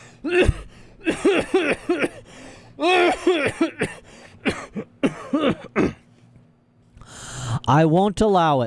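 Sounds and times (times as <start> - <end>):
speech: 0.2 - 0.6, 7.7 - 8.6
man coughing harshly into a handkerchief: 0.2 - 6.1.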